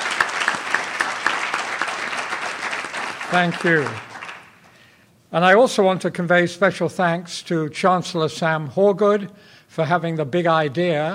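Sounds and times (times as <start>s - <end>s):
room full of people applauding: 0.0s - 4.8s
sharp individual claps: 0.0s - 4.8s
speech: 3.3s - 4.1s, 5.3s - 11.1s.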